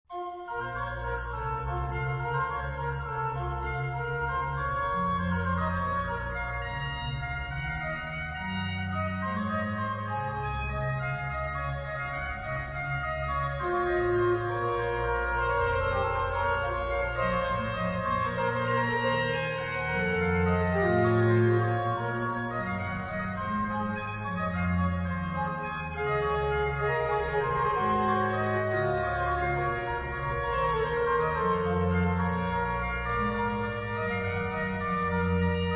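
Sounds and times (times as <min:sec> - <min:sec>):
piano: 0:00.1 - 0:35.7.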